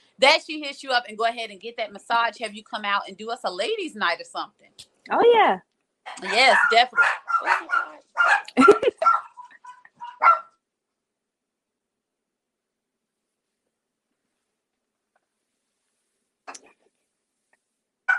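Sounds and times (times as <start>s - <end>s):
speech: 0.2s - 9.3s
several dogs barking in short sharp bursts: 6.2s - 10.5s
laughter: 8.5s - 9.6s.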